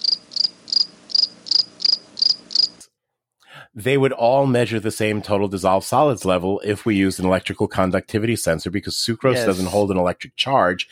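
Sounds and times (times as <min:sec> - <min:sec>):
crickets chirping: 0:00.0 - 0:02.8
speech: 0:03.8 - 0:10.9.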